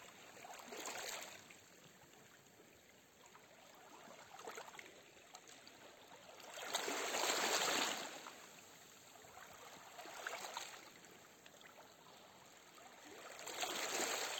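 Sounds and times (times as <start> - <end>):
water gently lapping: 0.0 - 14.3.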